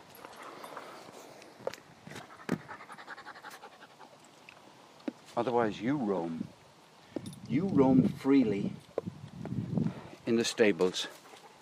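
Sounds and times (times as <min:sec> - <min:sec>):
dog panting: 0:02.2 - 0:04.2, 0:11.1 - 0:11.5
speech: 0:05.4 - 0:06.6, 0:07.5 - 0:08.8, 0:10.3 - 0:11.2.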